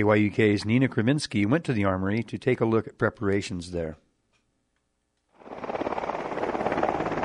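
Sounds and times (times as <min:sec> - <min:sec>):
speech: 0:00.0 - 0:04.0
Black Hawk helicopter touching down with engine and rotor noise: 0:05.4 - 0:07.2.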